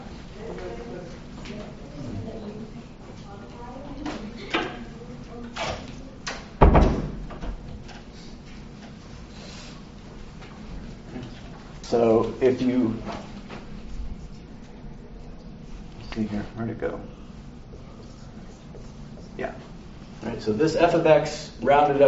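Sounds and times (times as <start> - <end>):
room noise: 0.0 - 22.0
door swinging closed with a solid thud: 5.6 - 7.8
speech: 11.9 - 13.2, 16.2 - 17.2, 20.4 - 22.0.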